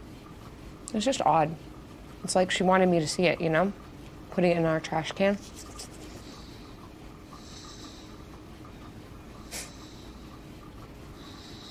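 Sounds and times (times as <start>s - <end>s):
speech: 0.9s - 5.8s
sharp snort: 9.5s - 9.8s.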